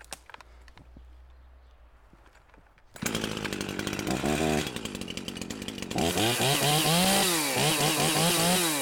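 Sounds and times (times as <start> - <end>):
two-stroke chainsaw starting and idling: 2.9 - 8.8.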